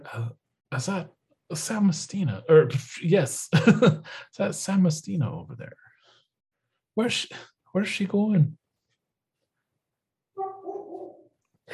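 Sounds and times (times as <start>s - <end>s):
speech: 0.0s - 5.8s, 7.0s - 8.6s
laughter: 3.5s - 4.2s
dog barking: 10.4s - 11.3s.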